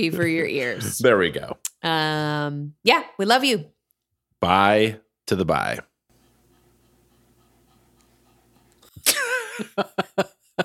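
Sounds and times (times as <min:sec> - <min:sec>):
speech: 0:00.0 - 0:03.8, 0:04.4 - 0:05.9, 0:09.6 - 0:10.6
dog panting: 0:06.1 - 0:09.0
laughter: 0:09.0 - 0:10.6.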